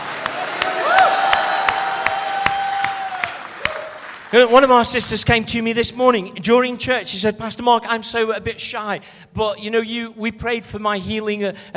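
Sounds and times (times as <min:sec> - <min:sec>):
audience roaring hallelujah: 0:00.0 - 0:04.1
steady wash of crowd noise: 0:00.0 - 0:04.6
speech: 0:04.3 - 0:11.7.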